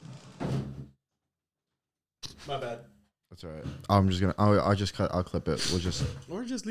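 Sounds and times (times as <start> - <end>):
door creaking and bumping shut: 0.0 - 0.9
speech: 2.4 - 6.6.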